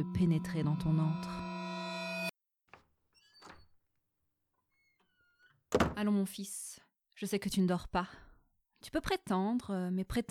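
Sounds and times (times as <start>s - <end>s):
speech: 0.0s - 1.5s, 6.0s - 10.2s
bright tonal burst: 0.0s - 2.3s.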